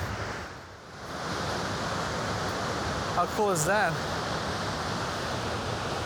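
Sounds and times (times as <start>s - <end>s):
waterfall roaring amid thick mist: 1.0s - 6.0s
speech: 3.2s - 4.1s.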